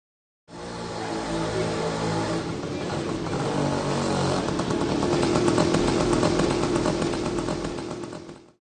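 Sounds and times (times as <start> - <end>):
scooter engine droning in a street during a kite festival in Ahmedabad India: 0.5 - 8.6.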